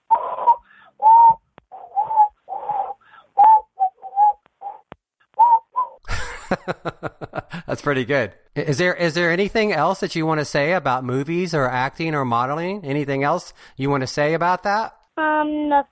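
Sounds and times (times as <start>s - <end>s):
person whistling short notes: 0.1s - 4.8s, 5.4s - 6.0s
laughter: 6.1s - 7.7s
speech: 6.6s - 15.9s.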